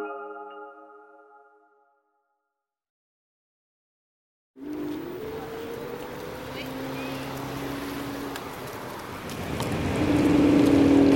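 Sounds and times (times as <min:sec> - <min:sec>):
road and wind noise of electric scooter riding through traffic: 0:04.6 - 0:11.1.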